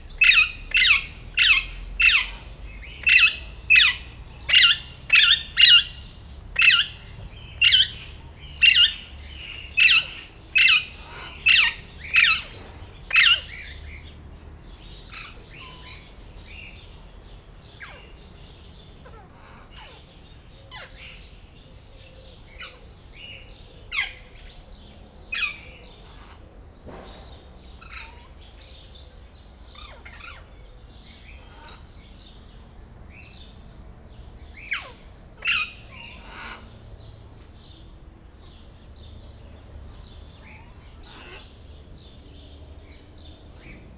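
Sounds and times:
blue-and-yellow macaw calling in Győr Zoo: 0.1 - 12.5.

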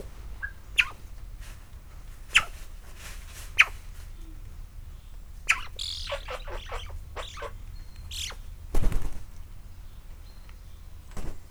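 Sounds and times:
Eurasian magpie giving harsh rasping chatter: 0.3 - 1.0, 2.3 - 2.6, 3.6 - 3.8, 5.5 - 8.4.

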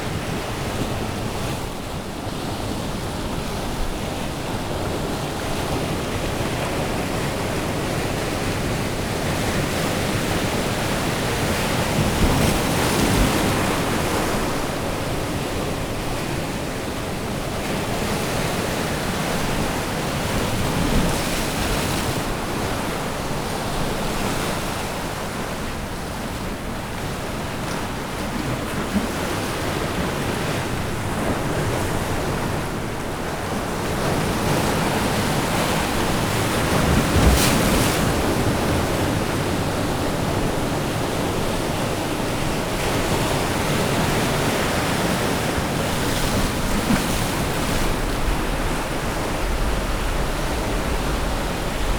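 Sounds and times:
ocean near the harbour in Orzola: 0.0 - 51.9.

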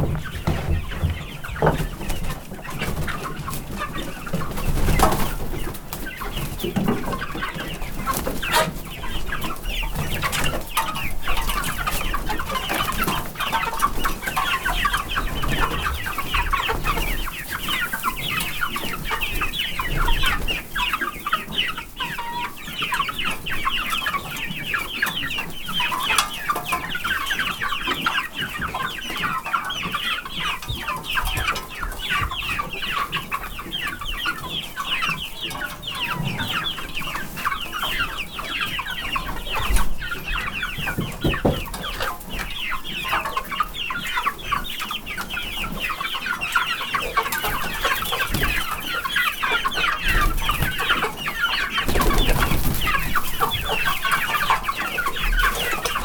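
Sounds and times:
barn door being closed and opened in a farmyard: 0.0 - 2.0
Hungarian hen chicks in a farmyard: 0.0 - 56.0.

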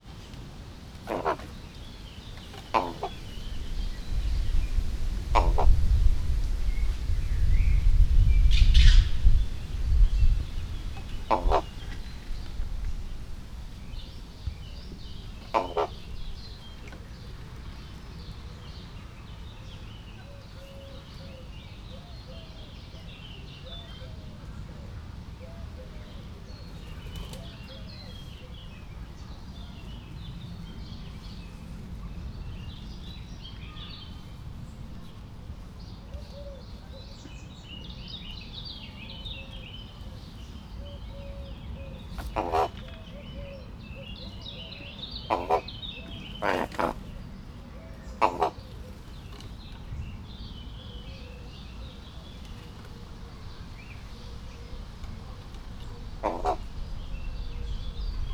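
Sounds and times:
wind: 0.0 - 58.3
raven: 1.0 - 1.6, 2.6 - 3.8, 5.1 - 6.0, 10.9 - 12.2, 15.3 - 16.2, 42.2 - 43.6, 44.2 - 49.0, 54.0 - 58.3.

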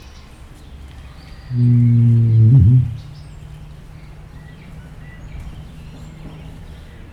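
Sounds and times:
rhea calling in a zoo: 1.5 - 3.4.

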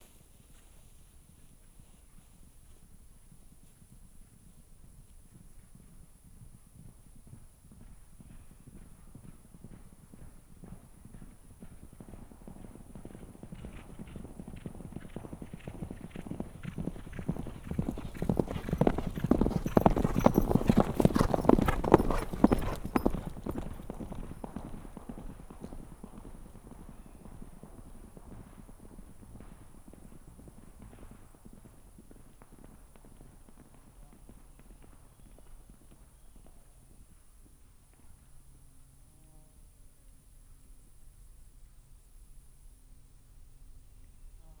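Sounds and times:
horse galloping on a hard dirt road: 1.2 - 38.7.

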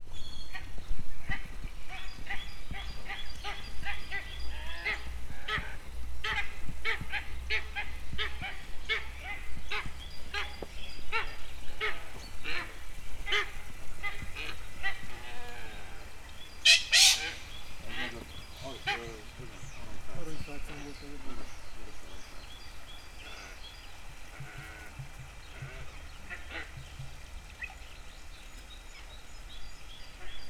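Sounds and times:
golden pheasant and eastern imperial eagle calling in a zoo: 0.1 - 30.4.

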